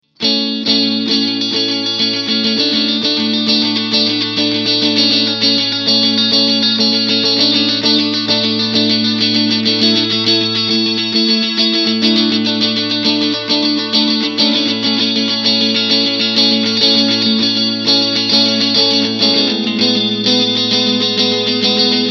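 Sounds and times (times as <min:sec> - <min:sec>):
guitar amplifier chime test: 0:00.2 - 0:22.1.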